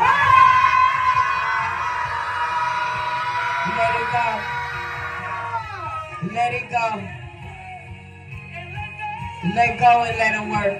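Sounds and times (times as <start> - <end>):
large audience screaming together: 0.0 - 6.4
people shouting: 0.0 - 6.4
speech: 4.1 - 4.6, 6.3 - 7.2, 9.4 - 10.7.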